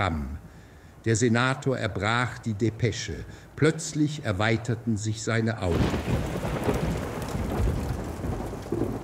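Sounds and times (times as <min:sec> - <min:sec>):
speech: 0:00.0 - 0:00.4, 0:01.0 - 0:06.4
hail or heavy rain drumming down: 0:05.6 - 0:09.0
deep thunder rumbling: 0:05.7 - 0:09.0.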